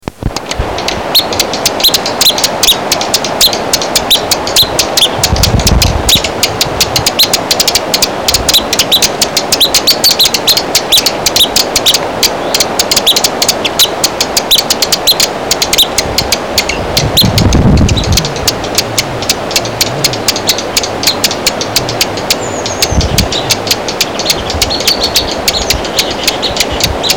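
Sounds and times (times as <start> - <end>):
dark-eyed junco calling: 0.4 - 27.1.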